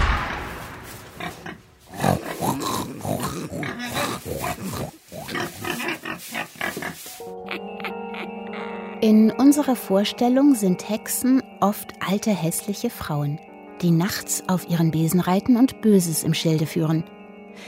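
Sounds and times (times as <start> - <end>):
wild boar grunting and snorting as a magic transformation effect: 1.2 - 7.1
speech: 9.0 - 17.6.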